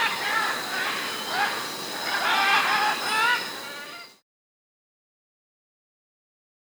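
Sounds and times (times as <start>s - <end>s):
Military macaw giving harsh raspy squawks in South America: 0.0s - 4.1s.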